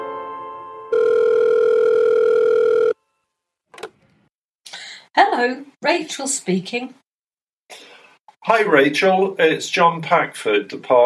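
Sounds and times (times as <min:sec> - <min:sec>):
electronic telephone ringing tone: 0:00.9 - 0:03.0
speech: 0:05.4 - 0:07.0, 0:08.4 - 0:11.0.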